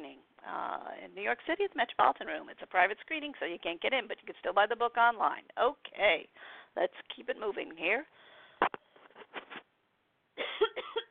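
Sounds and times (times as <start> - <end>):
speech: 0.6 - 8.8
person coughing: 10.4 - 11.0.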